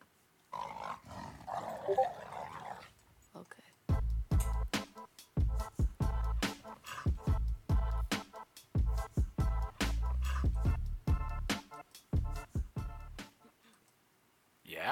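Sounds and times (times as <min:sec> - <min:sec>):
dog snarling: 0:00.5 - 0:03.0, 0:06.5 - 0:07.4, 0:10.2 - 0:10.6
speech: 0:01.9 - 0:02.2
loud steady percussive beat of sharp punchy hits: 0:03.8 - 0:13.4.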